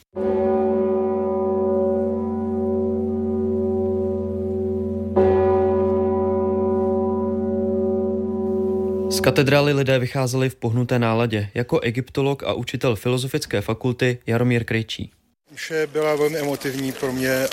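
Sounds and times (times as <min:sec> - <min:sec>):
huge deep cathedral bell tolling single strokes: 0:00.2 - 0:10.0
speech: 0:09.2 - 0:17.5.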